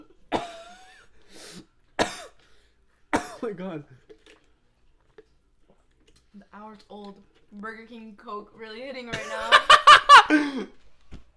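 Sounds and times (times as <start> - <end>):
sharp coughs trailing into a raspy wheeze: 0.0 - 1.0, 2.0 - 2.4, 3.2 - 3.5
speech: 3.4 - 4.1, 6.4 - 10.8.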